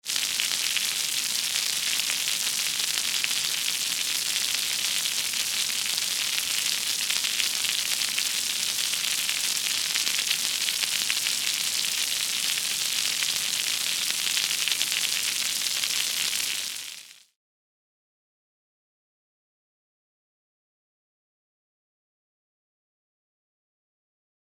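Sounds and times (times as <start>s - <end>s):
quiet rain: 0.1s - 17.2s.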